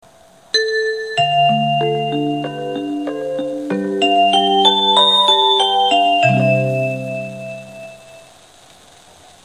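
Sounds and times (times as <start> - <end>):
chime: 0.6 - 8.3.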